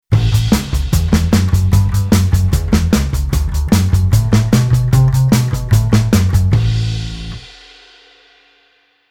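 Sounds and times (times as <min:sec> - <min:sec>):
rock and roll bass line: 0:00.1 - 0:07.8.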